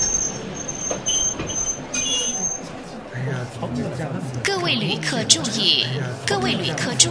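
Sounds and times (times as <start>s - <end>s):
train wheels squealing against the rails as the train stops: 0.0s - 3.0s
low rumbling: 0.0s - 7.0s
speech: 4.7s - 7.0s.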